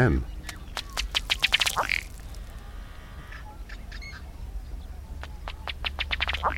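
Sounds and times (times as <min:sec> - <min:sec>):
speech: 0:00.0 - 0:00.3
low outdoor rumble: 0:00.0 - 0:06.5
male ruddy duck feet pattering on water during display run: 0:00.5 - 0:02.6.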